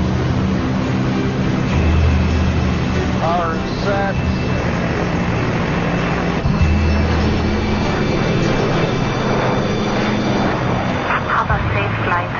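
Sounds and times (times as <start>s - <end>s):
aircraft engines powering up for takeoff on a runway: 0.0s - 12.3s
cockpit voices talking: 3.2s - 4.8s, 11.1s - 12.3s
radio calls: 3.2s - 5.0s, 11.0s - 12.3s.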